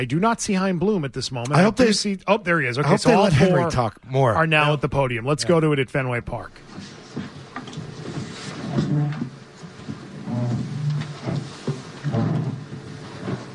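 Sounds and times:
speech: 0.0s - 6.9s
chairs scraping and bumping across a hard floor in a large room: 6.7s - 13.5s.

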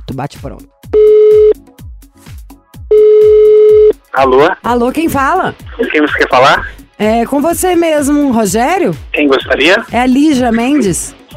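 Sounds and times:
speech: 0.2s - 1.1s, 4.2s - 11.2s
telephone call tone while dialling a number in Brazil: 1.0s - 1.6s, 2.9s - 4.0s.

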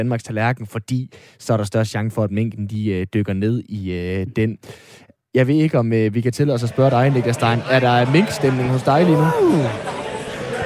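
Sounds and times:
speech: 0.0s - 10.0s
loud voiced call sliding down in pitch: 9.1s - 9.8s.

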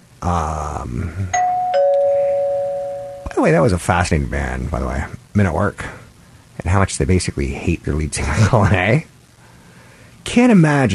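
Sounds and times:
speech: 0.2s - 1.4s, 3.4s - 6.0s, 6.6s - 9.1s, 10.3s - 10.9s
doorbell two-note ding-dong chime: 1.4s - 3.4s.

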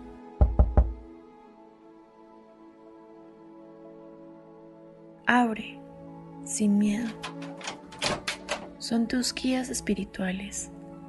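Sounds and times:
firm knocking on a door: 0.4s - 1.0s, 7.1s - 8.7s
speech: 5.3s - 5.8s, 6.5s - 7.6s, 8.8s - 10.8s.

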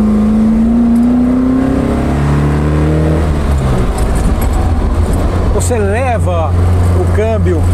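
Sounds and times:
Alfa Romeo car engine revving: 0.0s - 7.7s.

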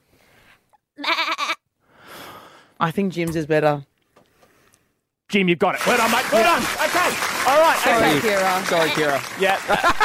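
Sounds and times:
person imitating a goat bleat: 1.0s - 1.6s
speech: 2.8s - 3.9s, 5.3s - 10.0s
laughter: 5.8s - 10.0s.

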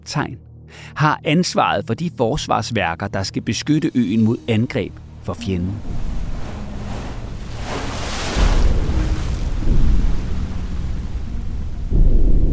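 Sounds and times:
speech: 0.1s - 6.1s
constant low wind rumble: 4.0s - 12.5s
waves crashing against the coast of Samsø, Denmark: 4.0s - 12.5s.

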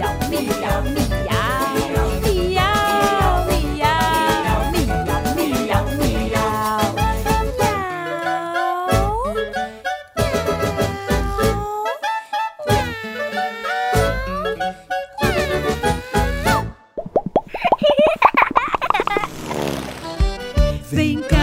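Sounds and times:
musical accompaniment: 0.0s - 17.0s, 19.5s - 21.4s
voice imitating a spotted kitten meowing: 2.7s - 4.8s, 7.6s - 9.4s, 10.5s - 12.0s, 12.7s - 16.7s
laughter: 17.5s - 20.0s.

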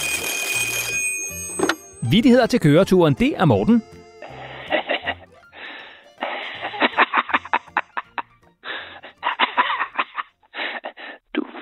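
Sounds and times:
telephone ringing with electronic trill for incoming listener call: 0.0s - 4.6s
speech: 2.1s - 4.0s
laughter: 4.2s - 5.3s, 6.2s - 8.3s, 9.0s - 10.9s.

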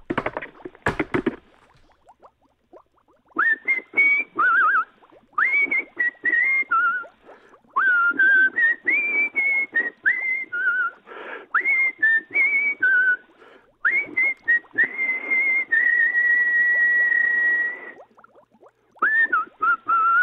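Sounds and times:
clattering taps and knocks: 0.0s - 1.9s
person whistling a bouncy tune: 3.4s - 7.2s, 7.8s - 18.0s, 19.0s - 20.2s.

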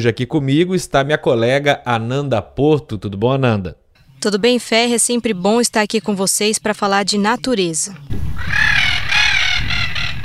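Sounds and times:
speech: 0.0s - 8.8s
Spix's macaw harsh raspy calls in the caatinga: 8.4s - 10.2s.

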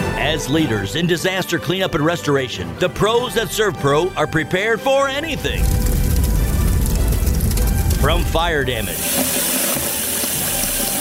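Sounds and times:
speech: 0.3s - 5.8s, 8.0s - 9.6s
water rushing: 5.2s - 11.0s.

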